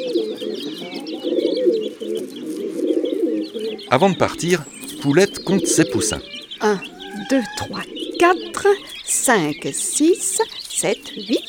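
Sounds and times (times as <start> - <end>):
other birds chirping and twittering: 0.0 - 11.4
several pigeons cooing in a low throaty warble: 0.0 - 11.4
speech: 3.9 - 11.4.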